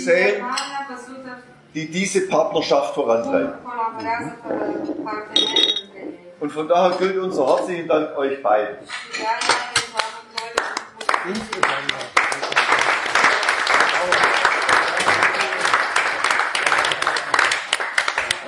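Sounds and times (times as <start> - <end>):
speech: 0.0 - 5.8, 6.4 - 9.8, 11.2 - 12.2
audience applause: 10.6 - 18.4.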